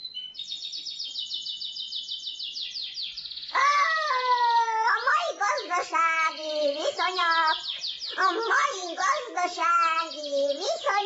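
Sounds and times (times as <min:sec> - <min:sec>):
pet birds chirping at feeding time: 0:00.0 - 0:11.0
speech: 0:05.9 - 0:11.0.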